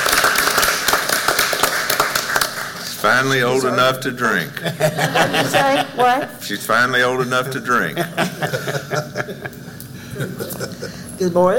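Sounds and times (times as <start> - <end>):
crowd applauding for an elderly volunteer: 0.0 - 3.6
speech: 3.0 - 9.5, 11.2 - 11.5.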